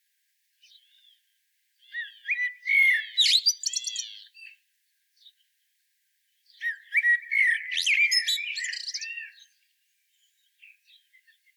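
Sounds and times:
Common blackbird Turdus merula singing a mellow whistled warble: 0:01.8 - 0:04.4, 0:06.5 - 0:09.6.

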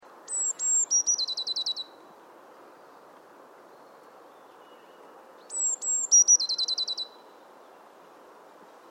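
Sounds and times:
quiet steady hiss: 0:00.0 - 0:08.8
Eurasian blue tit Cyanistes caeruleus song: 0:00.3 - 0:01.9, 0:03.7 - 0:07.2.

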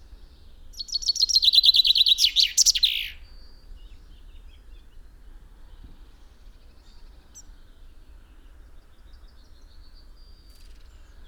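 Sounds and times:
common chaffinch Fringilla coelebs singing: 0:00.8 - 0:03.2.

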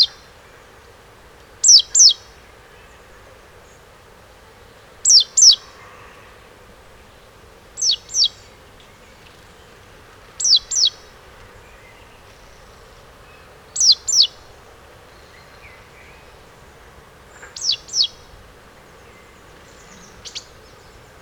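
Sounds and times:
great tit call: 0:01.6 - 0:02.2, 0:05.0 - 0:05.7, 0:07.8 - 0:08.4, 0:10.4 - 0:11.0, 0:13.8 - 0:14.4, 0:17.4 - 0:18.2, 0:19.0 - 0:21.2.

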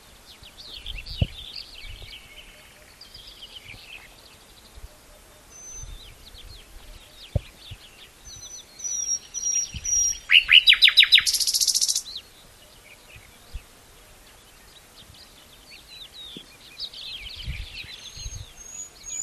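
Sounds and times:
common nightingale Luscinia megarhynchos singing: 0:00.0 - 0:13.7, 0:14.3 - 0:19.2.

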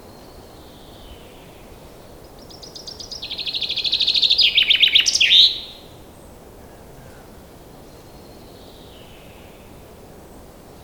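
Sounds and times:
common chaffinch (Fringilla coelebs) song: 0:02.4 - 0:05.7.

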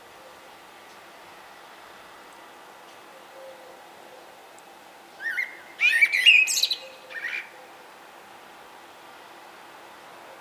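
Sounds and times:
common blackbird Turdus merula song: 0:05.2 - 0:07.6.

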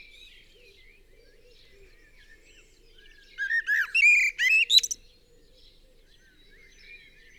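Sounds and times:
common blackbird Turdus merula singing mellow fluted whistled notes: 0:03.4 - 0:05.0.

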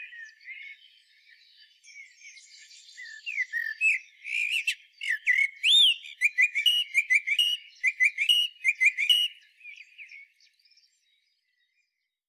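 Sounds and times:
common blackbird Turdus merula singing: 0:00.0 - 0:11.2.

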